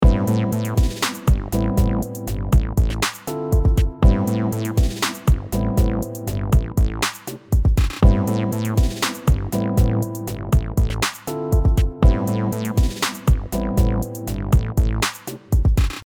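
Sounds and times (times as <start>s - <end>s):
dark music loop: 0.0s - 16.0s.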